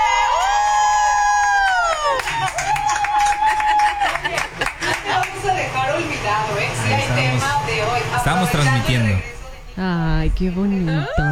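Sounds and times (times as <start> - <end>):
stadium crowd cheering and shouting: 0.0 - 4.6
laughter: 2.1 - 5.8
speech: 5.4 - 11.3.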